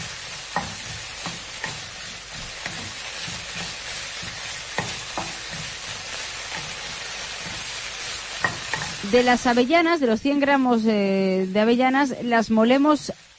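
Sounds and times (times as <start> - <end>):
utensil scraping and clicking against the pot while stirring: 0.0 - 9.1
food sizzling in hot oil in a pot: 0.0 - 13.3
speech: 9.1 - 13.3.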